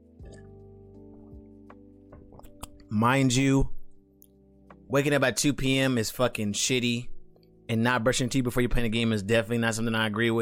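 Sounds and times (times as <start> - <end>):
wet sipping and slurping of water: 0.2 - 1.4
quick liquid gulps: 0.2 - 2.9
speech: 2.9 - 3.8, 4.9 - 7.1, 7.7 - 10.4.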